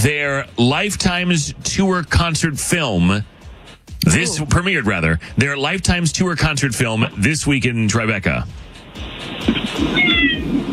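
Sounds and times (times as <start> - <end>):
speech: 0.0 - 3.3, 4.0 - 10.3
cat meowing: 9.7 - 10.7.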